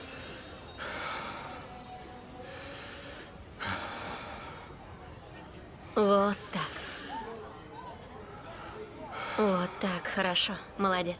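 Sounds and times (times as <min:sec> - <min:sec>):
person heavy gasping breathing: 0:00.0 - 0:01.8, 0:02.4 - 0:04.8, 0:08.3 - 0:10.2
noisy background: 0:00.0 - 0:11.1
speech: 0:09.4 - 0:11.1.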